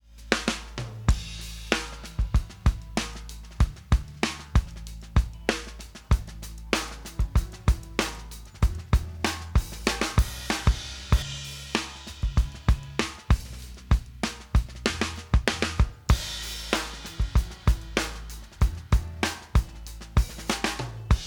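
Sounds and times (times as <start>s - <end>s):
drums with overhead microphones: 0.0s - 21.2s.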